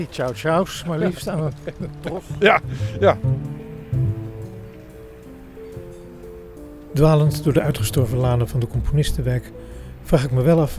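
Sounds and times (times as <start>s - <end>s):
speech: 0.0s - 3.6s, 7.0s - 10.7s
laughter: 0.0s - 5.5s
rain falling on open ground in a park: 0.0s - 10.7s
low tonal hum: 1.1s - 10.7s.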